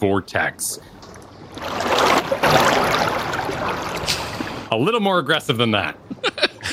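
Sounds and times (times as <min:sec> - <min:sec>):
speech: 0:00.0 - 0:03.1, 0:03.8 - 0:06.5
water sloshing and lapping against a wall: 0:00.8 - 0:04.7.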